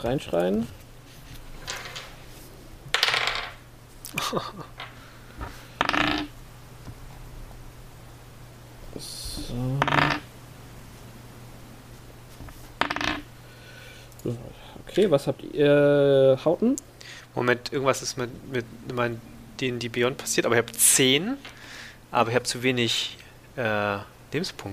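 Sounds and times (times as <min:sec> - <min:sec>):
speech: 0:00.0 - 0:00.8, 0:04.2 - 0:04.8, 0:09.0 - 0:10.0, 0:14.2 - 0:24.7
faint steady hum: 0:00.0 - 0:24.7
dice rattling and tumbling across a tabletop: 0:02.9 - 0:03.6, 0:05.8 - 0:06.3, 0:09.8 - 0:10.3, 0:12.8 - 0:13.2.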